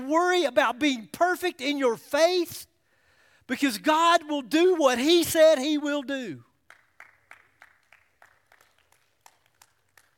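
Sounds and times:
speech: 0.1 - 2.7, 3.5 - 6.5
handful of people clapping sparsely in a room: 6.6 - 10.1.

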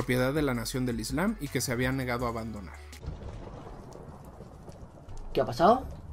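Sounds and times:
speech: 0.0 - 3.2, 5.3 - 6.0
house fire crackling: 0.0 - 6.1
house fire roaring: 2.6 - 6.1.

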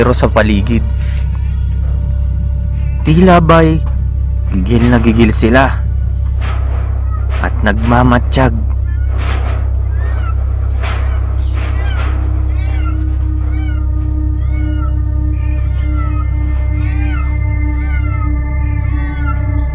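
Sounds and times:
speech: 0.0 - 1.2, 3.1 - 3.9, 4.5 - 5.8, 7.4 - 8.7
steady low rumble: 0.0 - 19.7
several cats meowing and yowling: 6.1 - 19.7.

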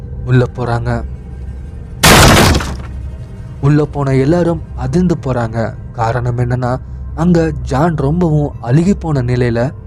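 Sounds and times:
speech: 0.2 - 1.1, 3.6 - 9.8
door smashed open with splintering and breaking debris: 2.0 - 2.9.

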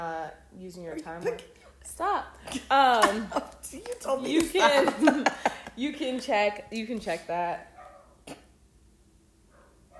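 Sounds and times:
speech: 0.0 - 7.7
dog barking: 7.8 - 8.2, 9.5 - 9.9.

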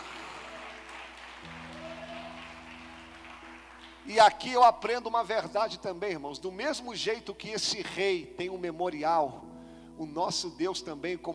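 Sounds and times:
audience clapping: 0.0 - 4.6
speech: 4.0 - 11.3.

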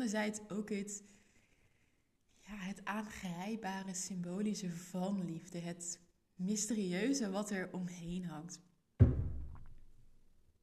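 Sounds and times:
speech: 0.0 - 1.2, 2.5 - 8.7
dull thump of a cat playing: 9.0 - 9.9.

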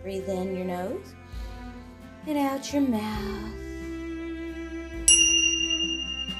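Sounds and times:
speech: 0.0 - 1.3, 2.2 - 3.6
tingsha bells ringing: 5.1 - 6.3.

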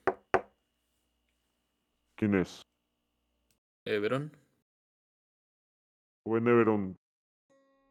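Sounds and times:
knocking on a wooden office door: 0.0 - 0.5
speech: 2.2 - 2.7, 3.9 - 4.4, 6.3 - 7.0.

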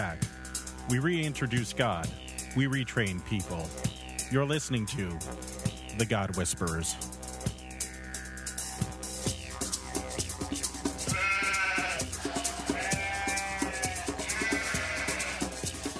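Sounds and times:
steady rhythmic ticking pulse: 0.0 - 15.9
speech: 0.9 - 7.2
sheep bleating: 11.1 - 15.6.

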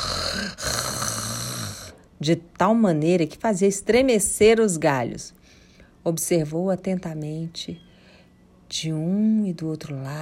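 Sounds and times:
wolf snoring loudly: 0.0 - 2.0
speech: 2.2 - 5.4, 6.0 - 7.9, 8.7 - 10.2.

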